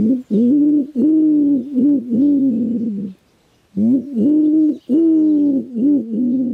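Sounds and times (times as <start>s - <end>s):
common wood pigeon cooing nest call: 0.0s - 3.2s, 3.8s - 6.5s.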